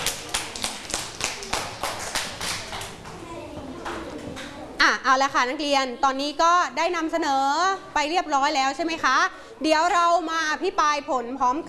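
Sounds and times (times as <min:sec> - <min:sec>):
room full of children clapping for presenting students: 0:00.0 - 0:03.2
speech: 0:04.9 - 0:11.6.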